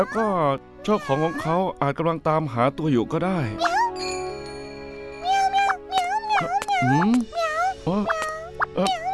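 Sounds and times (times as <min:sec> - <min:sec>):
speech: 0:00.0 - 0:03.8, 0:06.8 - 0:08.9
hungry kitten meowing in high wavering cries: 0:05.3 - 0:09.1
person murmuring: 0:06.4 - 0:09.1.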